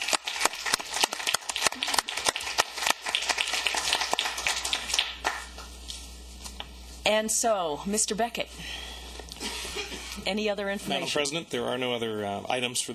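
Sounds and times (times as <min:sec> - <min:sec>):
small group clapping after unanimous vote: 0:00.0 - 0:05.8
speech: 0:07.1 - 0:08.9, 0:10.3 - 0:12.9.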